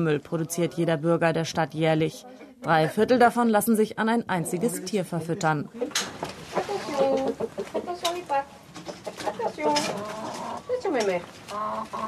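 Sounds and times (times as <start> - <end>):
speech: 0.0 - 6.4, 7.0 - 12.0
flock of chickens clucking and squawking: 5.8 - 12.0.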